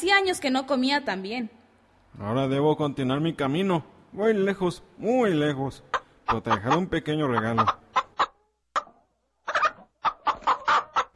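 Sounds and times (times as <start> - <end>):
speech: 0.0 - 1.6, 2.2 - 7.8
hen clucking: 5.8 - 11.1.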